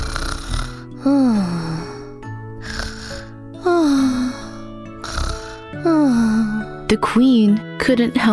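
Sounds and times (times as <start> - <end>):
exaggerated snoring of a sleeping king: 0.0 - 6.8
speech: 1.0 - 1.6, 6.9 - 8.3.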